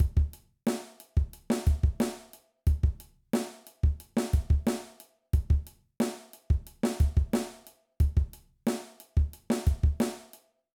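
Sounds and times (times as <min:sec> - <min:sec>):
rock drum beat: 0:00.0 - 0:00.4, 0:01.2 - 0:05.7, 0:06.5 - 0:10.2.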